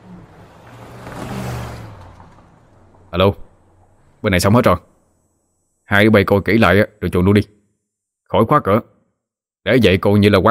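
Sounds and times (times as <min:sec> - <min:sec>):
car speeding away: 0:00.0 - 0:04.2
speech: 0:03.1 - 0:03.4, 0:04.2 - 0:04.9, 0:05.9 - 0:07.6, 0:08.3 - 0:08.9, 0:09.6 - 0:10.4.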